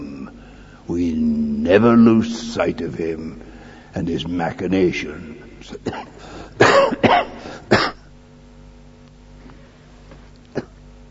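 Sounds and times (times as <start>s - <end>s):
low steady hum: 0.0s - 11.0s
speech: 0.9s - 6.9s
loud harsh coughs from a speaker addressing an audience: 5.8s - 8.1s, 10.5s - 10.8s.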